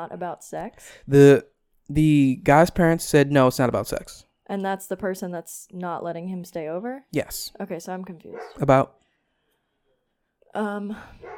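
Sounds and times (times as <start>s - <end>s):
speech: 0.0s - 9.0s, 10.6s - 11.3s
dog barking: 8.3s - 8.6s, 11.2s - 11.3s.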